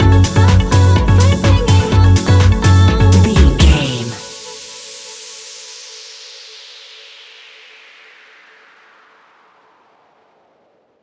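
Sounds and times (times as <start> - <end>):
fast paced tropical club music stinger: 0.0 - 5.9.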